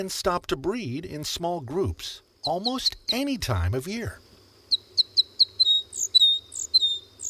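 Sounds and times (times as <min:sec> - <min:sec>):
speech: 0:00.0 - 0:04.3
crossbill chip notes and trilling chatter: 0:02.4 - 0:07.2.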